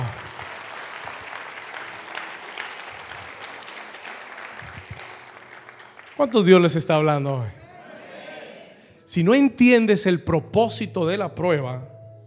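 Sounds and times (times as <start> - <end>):
audience applauding: 0.0 - 7.1
speech: 6.2 - 7.6, 9.1 - 11.9.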